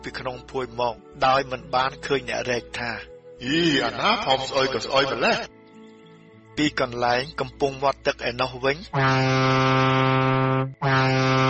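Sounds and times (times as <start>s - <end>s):
speech: 0.0s - 5.6s, 6.6s - 11.4s
passenger boat horn sounding departure signal: 8.9s - 11.4s.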